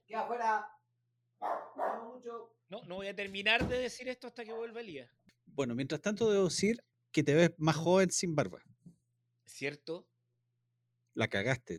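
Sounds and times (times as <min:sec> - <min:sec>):
speech: 0:00.1 - 0:00.8, 0:01.4 - 0:08.7, 0:09.5 - 0:10.1, 0:11.2 - 0:11.7
small dog barking: 0:01.4 - 0:02.2.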